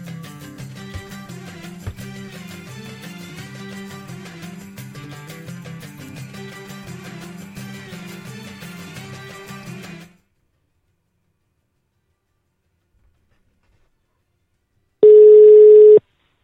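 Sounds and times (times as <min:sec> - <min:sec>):
music: 0:00.0 - 0:15.0
long steady ringback tone of an outgoing phone call: 0:15.0 - 0:16.0.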